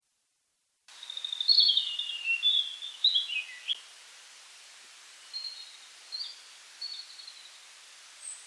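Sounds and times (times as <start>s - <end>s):
European robin singing: 0.9s - 3.8s, 5.2s - 7.6s
faint hiss: 0.9s - 8.4s.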